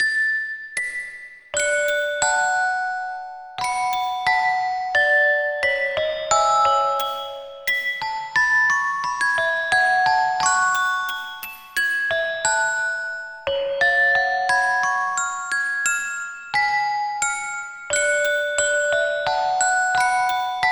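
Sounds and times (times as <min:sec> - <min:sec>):
music box melody: 0:01.6 - 0:20.7.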